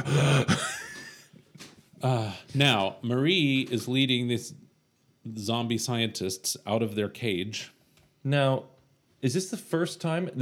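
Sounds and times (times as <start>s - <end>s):
person imitating heavy panting of a running man: 0.0s - 0.6s
speech: 2.0s - 4.6s, 5.2s - 10.4s.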